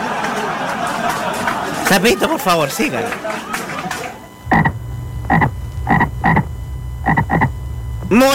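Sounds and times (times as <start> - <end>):
laughter: 0.0 - 4.3
speech: 1.9 - 3.6, 8.1 - 8.3
low steady rumble: 4.4 - 8.2
toad croaking with short raspy calls: 4.5 - 7.5.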